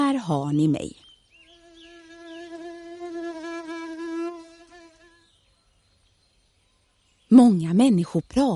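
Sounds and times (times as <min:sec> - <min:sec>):
speech: 0:00.1 - 0:01.0, 0:07.3 - 0:08.5
housefly buzzing in flight: 0:01.4 - 0:05.5.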